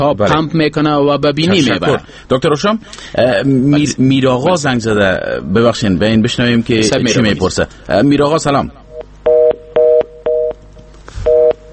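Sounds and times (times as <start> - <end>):
speech: 0.0 - 8.8
telephone busy signal: 9.3 - 10.6, 11.3 - 11.7.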